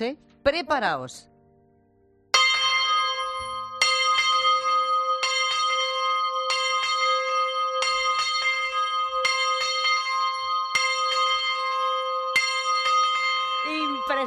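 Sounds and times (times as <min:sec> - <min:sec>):
speech: 0:00.0 - 0:01.3, 0:14.1 - 0:14.2
church bell ringing loudly: 0:02.3 - 0:14.2.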